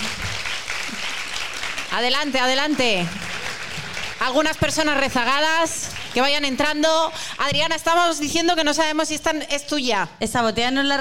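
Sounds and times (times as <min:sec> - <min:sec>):
crowd applauding: 0:00.0 - 0:06.8
speech: 0:02.0 - 0:03.2, 0:04.2 - 0:10.9.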